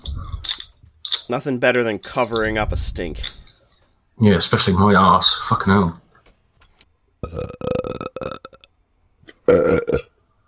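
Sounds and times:
speech: 1.3s - 3.4s, 4.2s - 6.0s, 7.2s - 7.7s
person burping: 7.2s - 8.7s, 9.3s - 10.2s.

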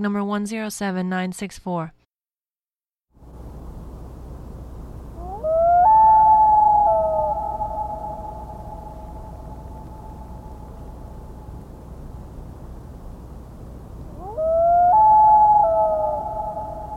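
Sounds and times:
speech: 0.0s - 2.0s
Common Loon gliding wail call: 5.2s - 10.7s, 14.2s - 16.9s.

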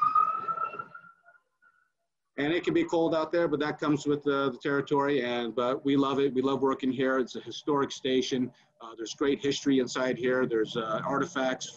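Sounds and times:
ambulance siren wailing in a steady high tone as it passes: 0.0s - 1.2s
speech: 2.4s - 11.7s.

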